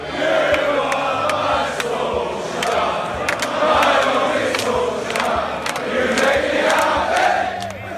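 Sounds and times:
football fans singing a chant in a stadium: 0.0s - 7.9s
sharp claps or shouts from a stadium crowd: 2.6s - 7.9s.

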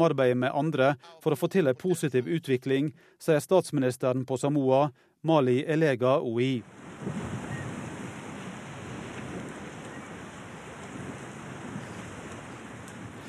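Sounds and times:
speech: 0.0s - 7.4s
ocean waves breaking on an island shore: 6.6s - 13.2s
wind noise buffeting the microphone: 6.6s - 13.2s.

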